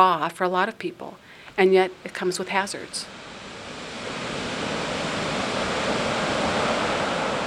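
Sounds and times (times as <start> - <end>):
speech: 0.0 - 3.2
ocean surf at the Pacifica Pier as a storm comes in: 2.0 - 7.4.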